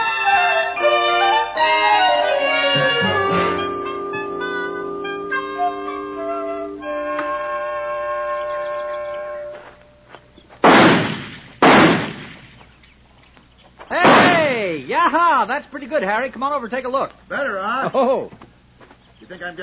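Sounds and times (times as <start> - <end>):
sustained tonal music: 0.0 - 10.1
target pistol shots: 10.6 - 12.6, 14.0 - 14.6
speech: 15.4 - 18.4, 19.3 - 19.6.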